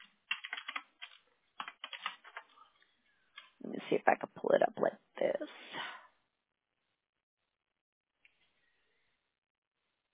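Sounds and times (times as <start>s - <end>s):
typing on a computer keyboard: 0.0s - 2.5s
speech: 3.9s - 6.0s.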